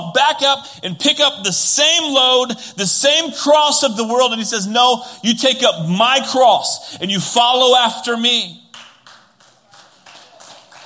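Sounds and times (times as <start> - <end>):
speech: 0.0 - 8.6
audience clapping in a quick even rhythm: 8.7 - 10.8.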